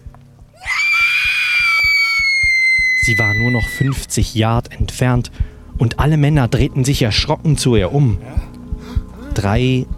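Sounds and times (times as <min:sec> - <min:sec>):
steady low pulsing beat: 0:00.0 - 0:09.9
woman's long shrill desperate scream: 0:00.6 - 0:04.1
speech: 0:03.1 - 0:08.5, 0:09.4 - 0:09.9.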